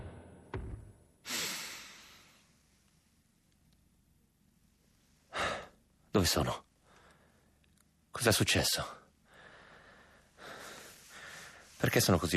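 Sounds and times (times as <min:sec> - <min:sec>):
short forceful exhale: 0:01.3 - 0:02.4
deliberate deep breath drawn in: 0:01.3 - 0:02.5, 0:09.3 - 0:11.8
speech: 0:06.2 - 0:06.7, 0:08.2 - 0:09.0, 0:11.8 - 0:12.3.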